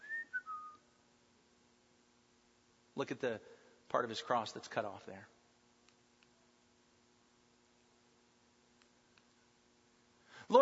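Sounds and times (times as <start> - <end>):
man whistling a descending three-note phrase: 0.0 - 0.9
speech: 3.0 - 5.4.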